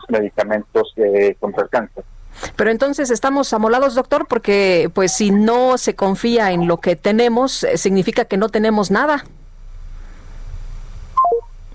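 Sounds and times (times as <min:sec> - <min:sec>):
faint hiss: 0:00.0 - 0:02.7, 0:09.0 - 0:11.7
low phone line noise: 0:00.0 - 0:09.2
speech: 0:00.1 - 0:09.4
descending electronic phone disconnect tones: 0:11.2 - 0:11.6.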